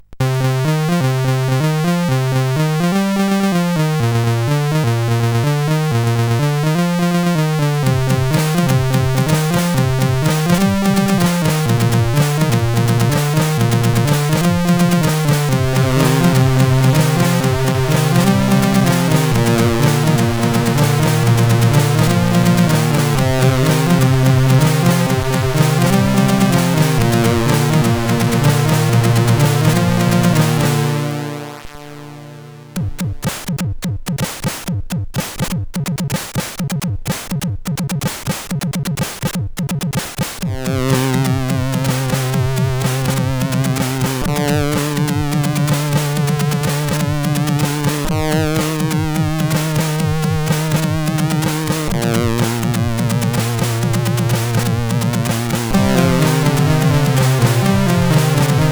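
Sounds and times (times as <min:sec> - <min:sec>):
SID chip music on CSG 8580R5: 0:00.1 - 0:58.7.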